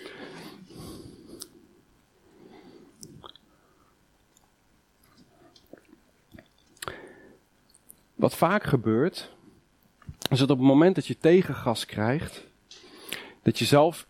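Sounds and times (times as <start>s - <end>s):
person sipping a drink with slurps and a swallow: 2.9s - 3.5s, 5.0s - 7.0s
speech: 8.2s - 9.4s, 10.3s - 12.5s, 13.5s - 14.0s.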